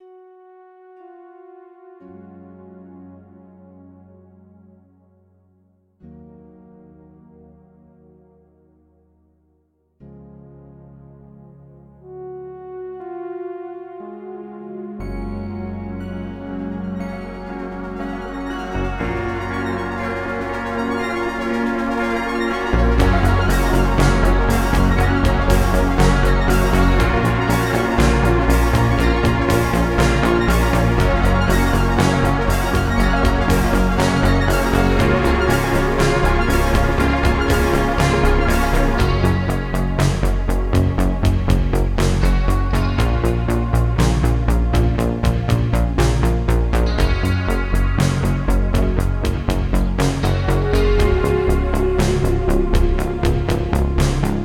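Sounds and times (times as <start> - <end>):
120 bpm video game music: 14.3 - 54.4.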